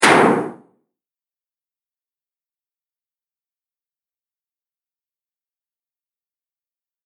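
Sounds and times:
heavyweight bomb explosion impact: 0.0 - 0.6.

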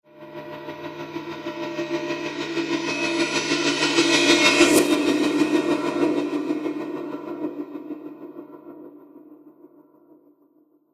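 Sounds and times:
reverse cymbal tremolo: 0.2 - 8.2.

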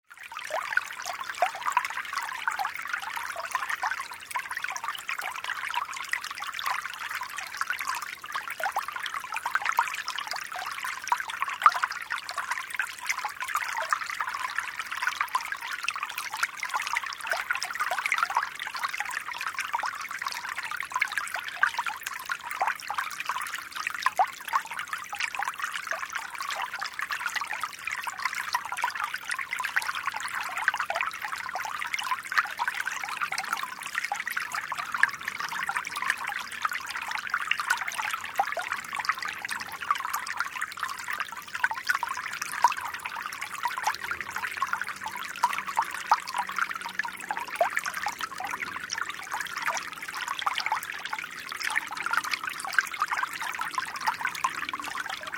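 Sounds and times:
small light stream running over pebbles: 0.3 - 55.3.

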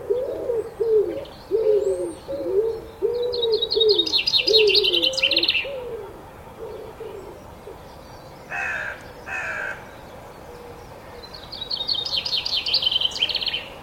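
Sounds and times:
songbird trilling brightly: 0.0 - 5.9, 6.6 - 13.8
pigeon giving low rolling coos in the early morning: 0.0 - 7.8
brief harsher bird calls: 0.0 - 13.8.

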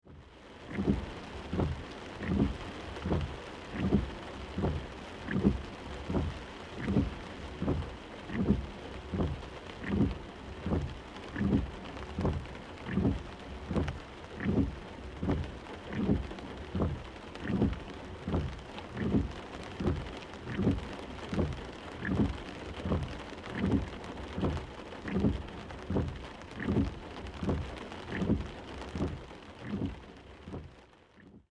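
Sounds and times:
medium rain: 0.0 - 31.5
car windshield wipers: 0.6 - 31.4.

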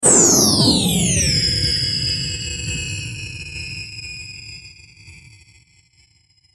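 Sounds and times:
digital electrical power down rising and diving: 0.0 - 3.4.

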